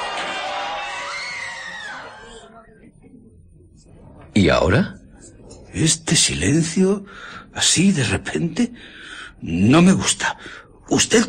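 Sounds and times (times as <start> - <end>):
people screaming and shouting while running in a street: 0.0 - 2.4
speech: 3.8 - 5.0, 5.7 - 11.2.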